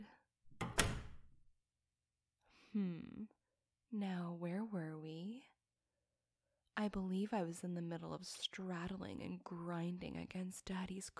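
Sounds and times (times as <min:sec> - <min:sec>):
door latch click: 0:00.5 - 0:01.3
door swinging shut with a solid thud: 0:00.5 - 0:01.4
speech: 0:02.7 - 0:05.5, 0:06.8 - 0:11.1.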